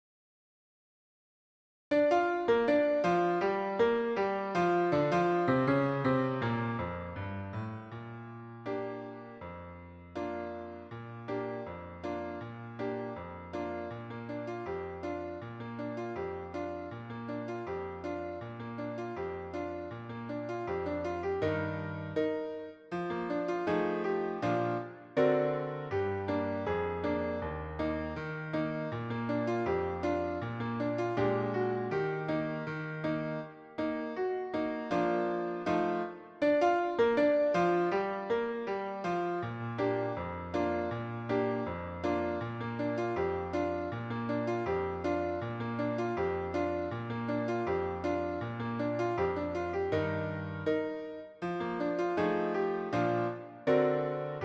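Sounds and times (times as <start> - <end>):
piano piece: 1.9 - 54.4.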